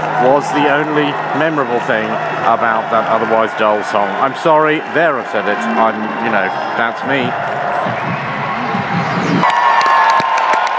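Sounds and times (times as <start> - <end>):
loud concert crowd roaring and cheering: 0.0 - 10.7
speech: 0.2 - 7.7
sharp claps and whoops: 7.9 - 10.7.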